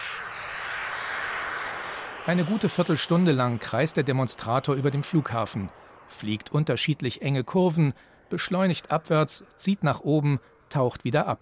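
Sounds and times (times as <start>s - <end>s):
airplane engine roaring at takeoff from runway: 0.0s - 6.6s
speech: 2.3s - 11.4s.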